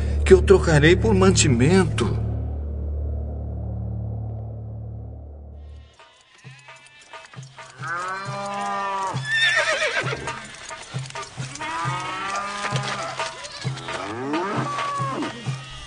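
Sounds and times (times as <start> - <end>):
low rumbling: 0.0 - 5.8
speech: 0.3 - 2.2
cattle mooing: 6.0 - 15.8
horses neighing and whinnying: 6.1 - 15.8.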